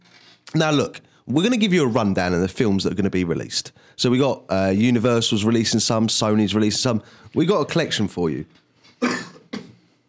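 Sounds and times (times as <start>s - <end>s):
speech: 0.5s - 9.2s
person coughing: 9.0s - 9.9s.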